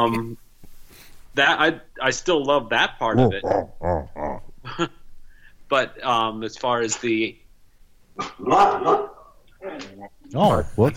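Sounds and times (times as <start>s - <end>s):
speech: 0.0s - 0.4s, 1.4s - 4.1s, 4.8s - 5.0s, 5.7s - 7.4s, 8.2s - 9.1s, 9.8s - 10.9s
dog barking: 8.2s - 9.3s.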